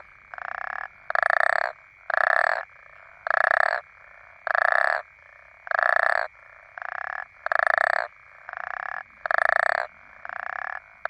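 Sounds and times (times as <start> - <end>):
African common toads croaking: 0.0 - 11.0.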